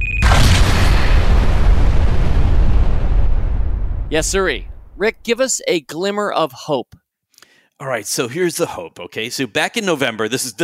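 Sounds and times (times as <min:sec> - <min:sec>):
cinematic explosion with heavy low-end rumble: 0:00.0 - 0:05.2
speech: 0:04.1 - 0:07.0, 0:07.8 - 0:10.6.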